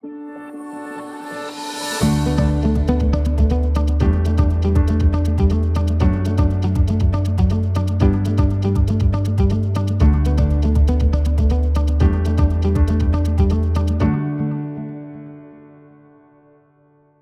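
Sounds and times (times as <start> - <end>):
upbeat inspirational guitar piano and percussion groove: 1.8 - 14.2.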